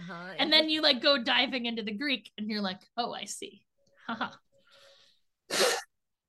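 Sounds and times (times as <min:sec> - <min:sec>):
speech: 0:00.1 - 0:04.4, 0:05.5 - 0:05.8
single forceful nose blow: 0:05.5 - 0:06.0.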